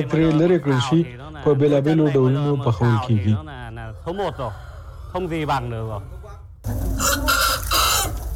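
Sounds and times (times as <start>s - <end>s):
speech: 0.0s - 6.8s
free-range farm chickens clucking and calling: 3.7s - 8.3s.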